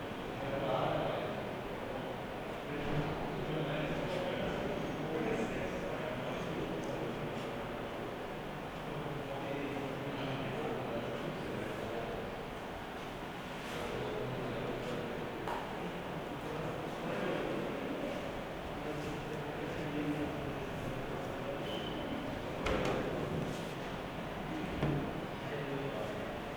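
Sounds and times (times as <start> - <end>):
background noise: 0.0 - 26.5.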